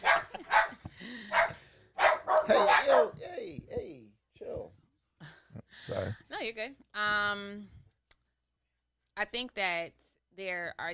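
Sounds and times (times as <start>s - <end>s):
dogs barking in sharp overlapping yaps: 0.0s - 3.2s
speech: 6.5s - 7.8s, 9.2s - 10.9s.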